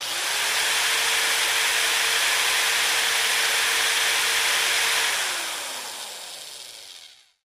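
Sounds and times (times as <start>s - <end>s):
electric drill: 0.0s - 7.4s.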